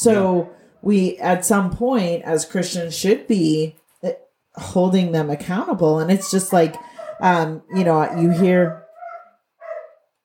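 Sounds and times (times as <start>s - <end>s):
speech: 0.0s - 8.8s
household dog barking: 6.8s - 10.1s.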